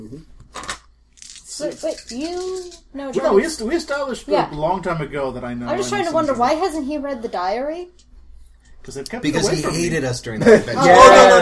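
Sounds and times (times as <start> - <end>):
speech: 0.0 - 0.4, 1.6 - 8.0, 8.8 - 11.4
dice clattering across a hard surface: 0.6 - 2.8.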